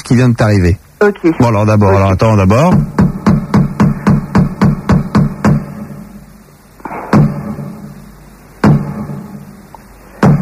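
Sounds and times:
speech: 0.1 - 3.0
knocking on a door: 2.7 - 5.7.

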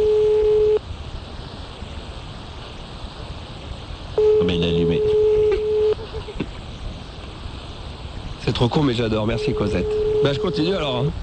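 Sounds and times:
electronic telephone ringing tone: 0.0 - 0.8, 4.2 - 6.0, 9.4 - 10.9
faint hiss: 0.0 - 11.2
speech: 8.6 - 11.2.

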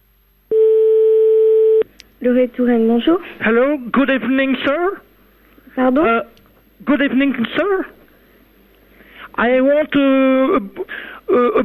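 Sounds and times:
French phone line ringback tone: 0.5 - 1.8
speech: 2.2 - 5.1, 5.8 - 8.0, 9.4 - 11.6.

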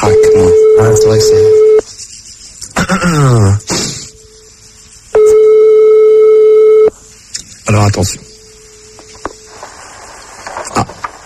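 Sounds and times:
ringback tone on an outgoing phone call: 0.0 - 1.8, 5.2 - 6.9
speech: 1.0 - 1.6, 2.9 - 3.8, 7.7 - 8.3.

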